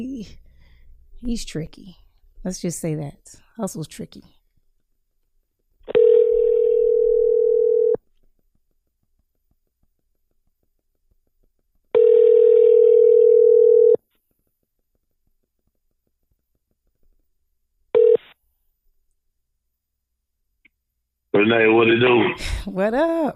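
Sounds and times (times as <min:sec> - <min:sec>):
speech: 0:00.0 - 0:00.4, 0:01.2 - 0:04.4, 0:21.5 - 0:23.3
phone ringback tone on an outgoing call: 0:05.9 - 0:08.0, 0:12.0 - 0:14.0, 0:18.0 - 0:18.2.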